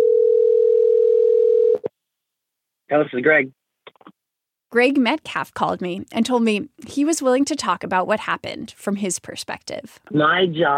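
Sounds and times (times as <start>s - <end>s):
telephone tone of an incoming call: 0.0s - 1.9s
speech: 2.9s - 3.6s, 4.7s - 10.7s.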